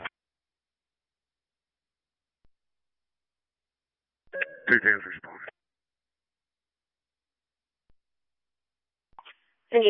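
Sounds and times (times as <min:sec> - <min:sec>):
fire station dispatch alert tones over a radio: 0:04.3 - 0:04.8
brief garbled voice over a radio: 0:04.4 - 0:05.5
speech: 0:04.7 - 0:05.5.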